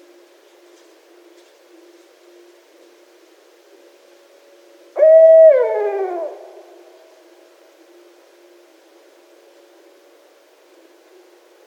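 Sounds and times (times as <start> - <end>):
barred owl hooting: 5.0 - 7.0.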